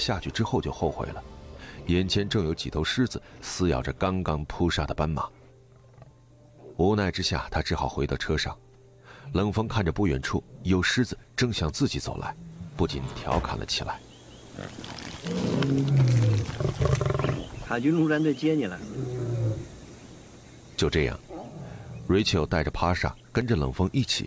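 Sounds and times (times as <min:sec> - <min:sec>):
speech: 0:00.0 - 0:05.4, 0:06.8 - 0:08.6, 0:09.2 - 0:16.0, 0:17.7 - 0:19.1, 0:20.8 - 0:21.3, 0:22.1 - 0:24.2
lions roaring and growling over a zebra kill: 0:14.6 - 0:17.7, 0:18.8 - 0:19.7, 0:21.3 - 0:22.3.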